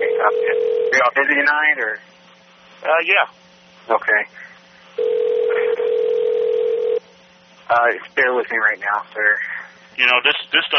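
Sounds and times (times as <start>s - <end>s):
telephone ring tone heard through the handset: 0.0s - 1.0s, 5.0s - 7.0s
speech: 0.2s - 2.2s, 2.8s - 5.6s, 7.7s - 10.7s.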